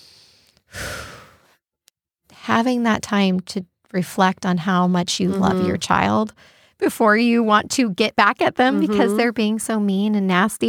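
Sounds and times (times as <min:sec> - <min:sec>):
deep breath drawn in and let out in a loud breathy sigh: 0:00.0 - 0:01.6, 0:06.4 - 0:06.8
speech: 0:02.5 - 0:10.6.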